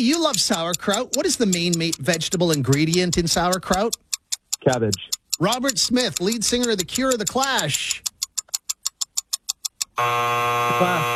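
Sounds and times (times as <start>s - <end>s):
speech: 0.0s - 8.1s, 10.0s - 11.1s
quiz game timer sharp ticks: 0.0s - 11.1s
quiz game buzzer sounding at the end of time: 10.0s - 11.1s.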